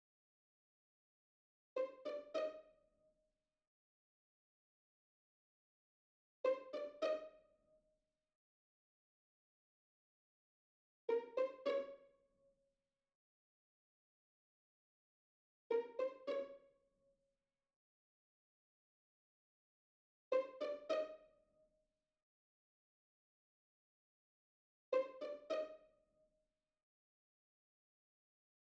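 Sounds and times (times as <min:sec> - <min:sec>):
full high strings playing pizzicato: 0:01.8 - 0:02.6, 0:06.5 - 0:07.3, 0:11.1 - 0:12.0, 0:15.7 - 0:16.6, 0:20.4 - 0:21.2, 0:25.0 - 0:25.8.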